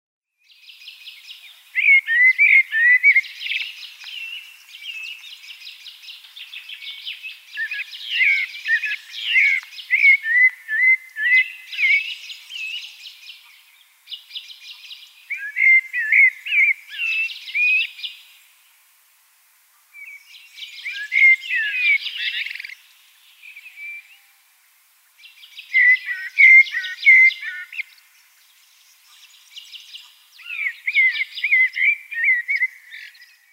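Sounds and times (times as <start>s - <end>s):
Eurasian Blackbird: 0.4s - 18.6s, 19.8s - 24.4s, 25.1s - 33.5s.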